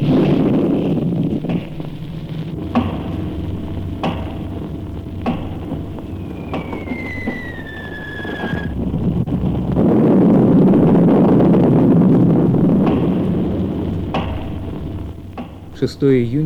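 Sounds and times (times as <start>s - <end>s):
artillery shelling explosions rumbling: 0.0s - 16.4s
descending whistle: 5.0s - 9.1s.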